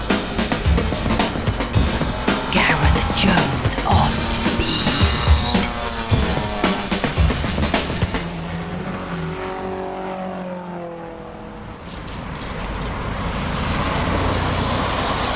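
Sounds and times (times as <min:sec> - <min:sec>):
combustion-engine cars driving into recycling centre: 0:00.0 - 0:02.6, 0:05.2 - 0:15.3
outdoor traffic noise: 0:00.0 - 0:15.3.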